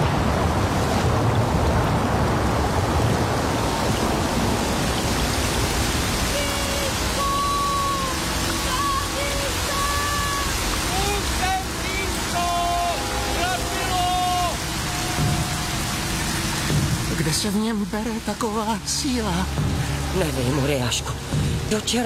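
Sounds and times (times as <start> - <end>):
heavy rain downpour in a storm: 0.0 - 22.0
speech: 17.4 - 22.0.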